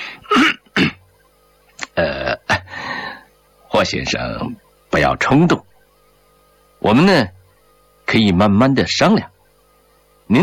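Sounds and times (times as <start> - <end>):
man clearing his throat: 0.2 - 1.1, 1.8 - 2.7
speech: 3.8 - 5.7, 6.8 - 7.4, 8.1 - 9.3.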